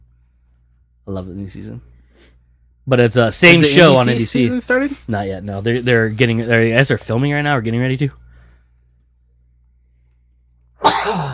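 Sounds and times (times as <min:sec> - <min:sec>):
speech: 0:01.0 - 0:08.2
person sneezing: 0:10.8 - 0:11.3.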